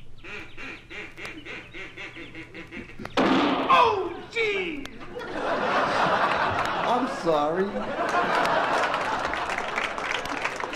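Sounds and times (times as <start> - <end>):
duck-call whistle blown to bring ducks flying out: 0.2 - 3.2
laughter: 1.4 - 10.7.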